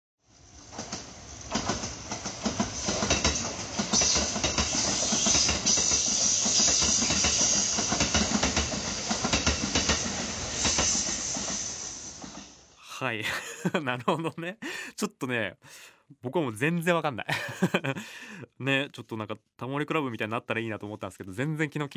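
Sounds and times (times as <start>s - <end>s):
limited express train to Ise-Shima passing: 0.2s - 13.2s
speech: 13.0s - 21.9s
laughter: 13.1s - 14.9s, 17.3s - 18.2s.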